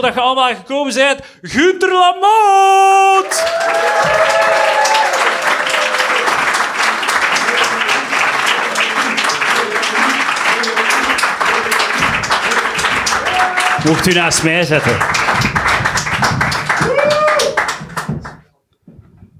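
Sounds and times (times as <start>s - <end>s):
speech: 0.0s - 5.2s, 13.4s - 15.6s
cheers: 2.6s - 18.2s
loud sustained applause from a large live audience: 3.2s - 18.4s.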